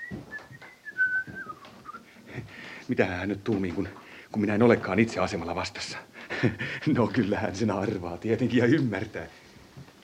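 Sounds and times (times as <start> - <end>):
man whistling quietly while pacing back and forth in a room: 0.0 - 2.0
speech: 2.9 - 9.4.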